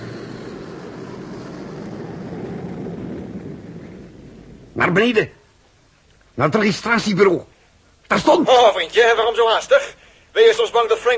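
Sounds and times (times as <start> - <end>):
heavy engine roar of a cargo freighter craft flying overhead: 0.0 - 4.8
speech: 4.8 - 5.4, 6.4 - 7.5, 8.1 - 11.1.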